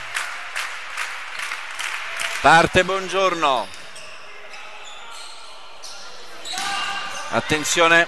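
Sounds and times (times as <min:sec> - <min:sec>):
crowd of fans cheering and clapping rhythmically during a match: 0:00.0 - 0:02.8
speech: 0:02.4 - 0:03.8, 0:07.3 - 0:08.0.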